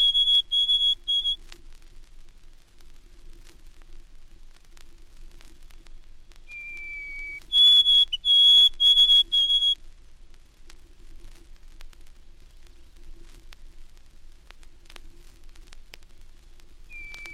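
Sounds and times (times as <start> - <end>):
White-throated Sparrow whistled song: 0.0 - 1.4, 6.5 - 9.8, 16.9 - 17.3.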